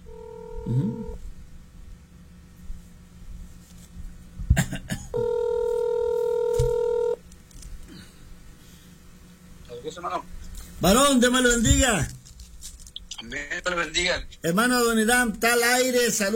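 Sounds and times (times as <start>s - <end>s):
low hum: 0.0s - 16.3s
speech: 0.6s - 1.2s, 10.0s - 12.2s, 13.3s - 16.3s
steady two-tone telephone ring: 5.2s - 7.2s.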